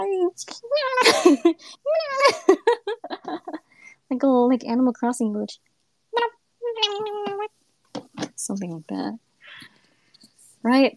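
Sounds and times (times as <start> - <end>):
speech: 0.4 - 2.6, 4.2 - 5.7, 8.5 - 9.3, 10.6 - 10.9
person imitating a pet cat's early-morning meowing: 0.6 - 1.1, 6.2 - 7.5
giggling: 0.9 - 4.0, 6.8 - 7.5
quick chatter: 6.8 - 7.5.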